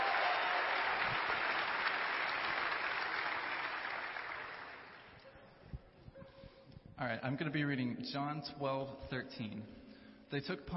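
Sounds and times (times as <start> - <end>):
crowd applauding: 0.0 - 5.2
speech: 7.0 - 10.7.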